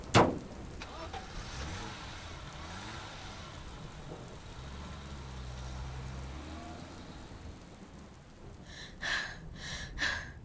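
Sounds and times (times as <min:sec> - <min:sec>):
sharp thump: 0:00.0 - 0:00.5
car engine rumble while driving: 0:00.0 - 0:10.4.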